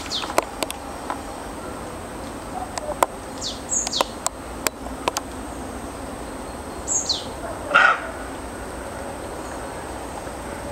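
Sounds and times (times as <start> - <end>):
low background noise: 0.0 - 10.7
roe deer hoarse call: 7.4 - 8.4.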